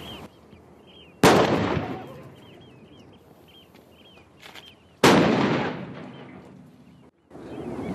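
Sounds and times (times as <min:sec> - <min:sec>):
faint birdsong chirping: 0:00.0 - 0:05.1, 0:05.8 - 0:07.9
coastal fortress cannon shots: 0:01.2 - 0:02.4, 0:05.0 - 0:06.6.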